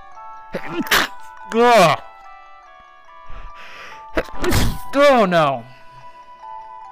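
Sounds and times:
speech: 0:00.5 - 0:02.1, 0:04.2 - 0:05.7
person sneezing: 0:00.6 - 0:01.3, 0:04.3 - 0:04.9
sharp voiced intake of breath: 0:03.3 - 0:04.1.

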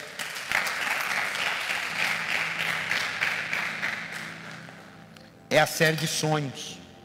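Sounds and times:
crowd applause with many hands clapping: 0:00.0 - 0:04.9
speech: 0:05.6 - 0:06.8.

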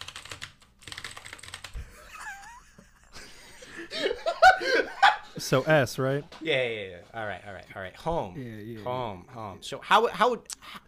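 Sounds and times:
typing on a computer keyboard: 0:00.0 - 0:01.8
people laughing and chuckling: 0:01.8 - 0:05.8
speech: 0:05.4 - 0:10.8.

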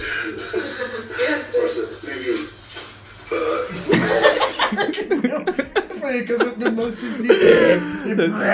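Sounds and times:
laughter: 0:00.0 - 0:02.0, 0:03.6 - 0:08.5
man burping after lunch: 0:03.3 - 0:03.9, 0:07.2 - 0:08.0
speech: 0:06.2 - 0:08.5.

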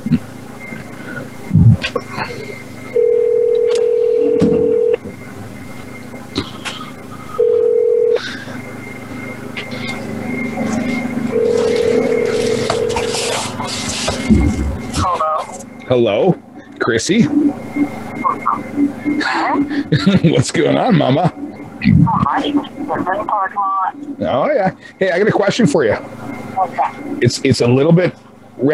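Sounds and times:
low murmuring: 0:00.0 - 0:28.7
laughter: 0:01.0 - 0:02.7, 0:06.3 - 0:08.6, 0:18.2 - 0:21.4
telephone ringback tones through a handset: 0:02.9 - 0:05.0, 0:07.4 - 0:08.4, 0:10.9 - 0:13.7
speech: 0:16.0 - 0:18.0, 0:20.0 - 0:28.7.

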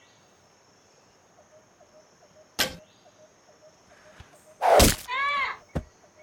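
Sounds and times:
rustling: 0:04.2 - 0:05.2
arrows hitting a target during target practice: 0:04.6 - 0:05.2.

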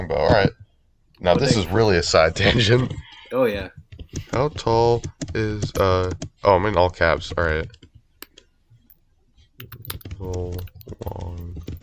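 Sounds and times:
speech: 0:00.0 - 0:00.6, 0:01.2 - 0:07.8, 0:09.6 - 0:11.8
typing on a computer keyboard: 0:09.6 - 0:11.8.

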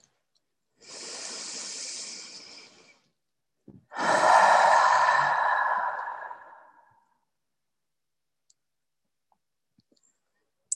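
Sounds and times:
slow breathing during a guided breath exercise: 0:00.8 - 0:03.2, 0:03.9 - 0:07.2.

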